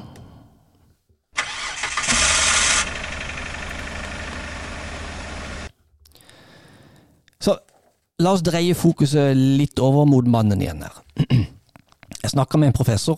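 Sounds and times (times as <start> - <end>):
car engine cranking, starting, revving and idling: 1.4 - 5.7
speech: 7.4 - 7.6, 8.2 - 11.5, 12.3 - 13.1.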